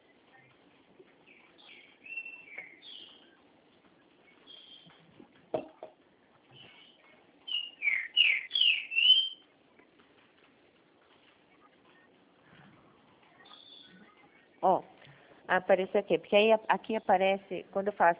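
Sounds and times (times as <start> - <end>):
small songbird singing clear whistled notes: 1.2 - 3.4, 4.3 - 5.1, 6.5 - 9.4, 13.4 - 14.0
speech: 15.5 - 18.1.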